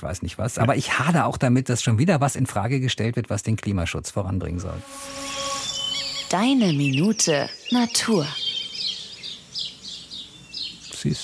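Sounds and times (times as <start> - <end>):
speech: 0.0 - 5.4, 6.3 - 8.4, 11.0 - 11.2
flock of sparrows chirping in bushes near Trier Germany: 5.2 - 11.2.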